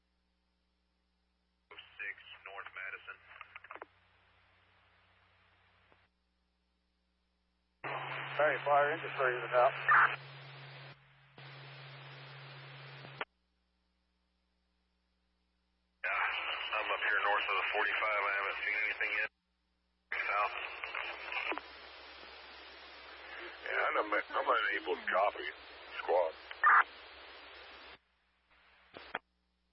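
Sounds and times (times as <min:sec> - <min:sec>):
harsh radio static crackling and hissing: 0:01.7 - 0:04.4, 0:07.8 - 0:13.3, 0:16.0 - 0:19.3, 0:20.1 - 0:29.2
speech: 0:08.4 - 0:10.4.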